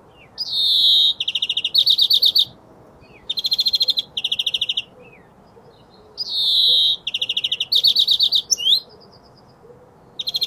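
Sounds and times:
European greenfinch Chloris chloris song with trills: 0.0 - 10.4.

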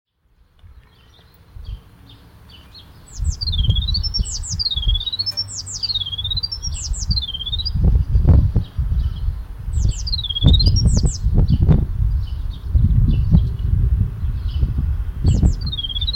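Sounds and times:
Eurasian blue tit calls: 0.6 - 11.4, 15.3 - 16.1
heavy low rumble: 1.5 - 16.1.

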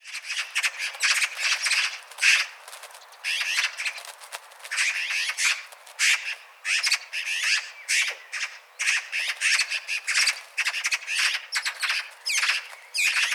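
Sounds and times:
Eurasian magpie Pica pica chattering loudly: 0.1 - 13.3.

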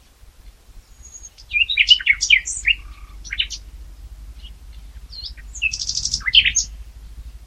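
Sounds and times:
faint low rumble: 0.0 - 7.4
common nightingale Luscinia megarhynchos singing chirps, whistles and rattles: 0.7 - 7.4.

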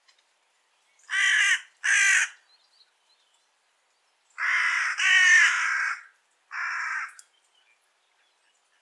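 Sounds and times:
Carrion crow Corvus corone giving harsh grating caws: 1.1 - 2.4, 4.4 - 7.2.

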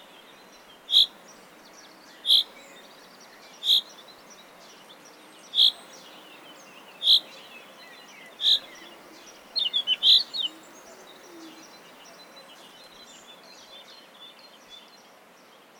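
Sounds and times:
Common chaffinch Fringilla coelebs calling: 0.9 - 1.3, 2.2 - 4.8, 5.5 - 13.0
faint bird chatter: 0.9 - 14.0.

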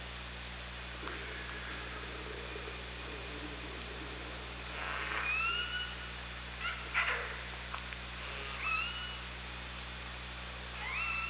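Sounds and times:
constant hiss and low hum: 0.0 - 11.2
killer whale pulsed call bursts underwater recorded with a hydrophone: 4.7 - 7.4, 8.2 - 9.3, 10.8 - 11.2
killer whale whistle-like call underwater recorded with a hydrophone: 5.0 - 6.0, 10.8 - 11.2.

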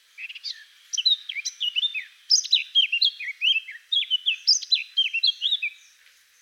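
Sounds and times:
Eurasian blackcap Sylvia atricapilla singing a rapid varied warble: 0.2 - 6.3.

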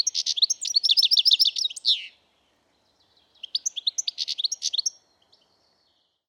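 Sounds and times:
European goldfinch Carduelis carduelis twittering: 0.0 - 2.1, 3.4 - 5.0.

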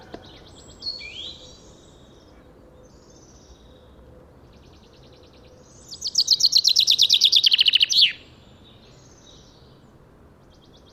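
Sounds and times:
common chaffinch (Fringilla coelebs) song: 0.0 - 10.9.

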